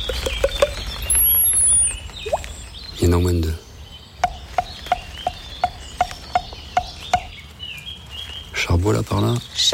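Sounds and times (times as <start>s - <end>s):
long-tailed tit calling outdoors: 0.0s - 8.6s
speech: 3.2s - 3.6s, 8.8s - 9.7s.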